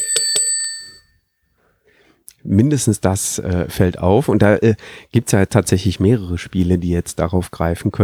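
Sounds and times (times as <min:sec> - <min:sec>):
desk bell struck in a card game: 0:00.0 - 0:01.2
speech: 0:02.4 - 0:08.0.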